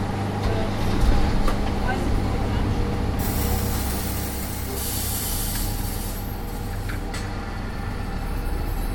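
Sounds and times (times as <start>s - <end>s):
large truck diesel engine rumbling: 0.0s - 8.9s
truck air brakes hissing: 3.2s - 6.6s.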